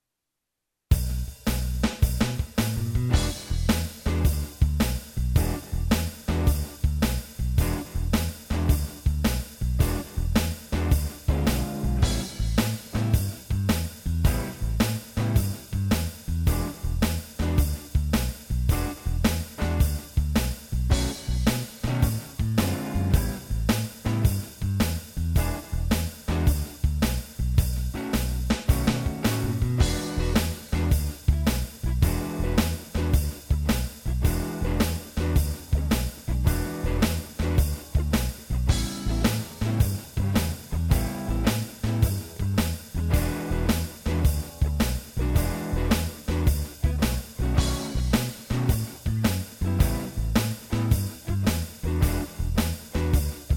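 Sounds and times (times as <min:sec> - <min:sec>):
blues music in E: 0:00.9 - 0:53.5.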